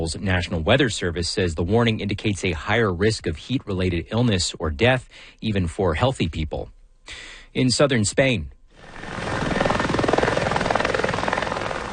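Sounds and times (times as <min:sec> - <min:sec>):
speech: 0:00.0 - 0:09.2
helicopters flying over a wildfire in Almeria province carrying firefighters: 0:08.8 - 0:11.9.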